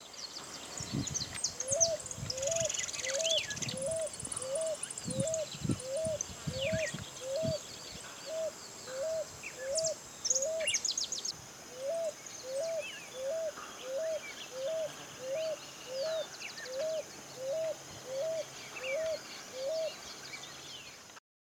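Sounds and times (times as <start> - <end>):
Columbina picui calling: 0.9 - 20.1.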